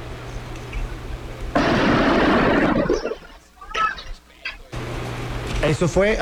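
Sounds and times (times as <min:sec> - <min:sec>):
Molotov cocktail explosion during an attack near a school: 0:01.5 - 0:04.2
speech: 0:05.7 - 0:06.1.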